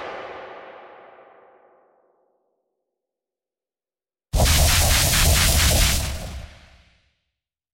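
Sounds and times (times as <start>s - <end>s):
time machine or teleport effect: 4.4s - 6.9s.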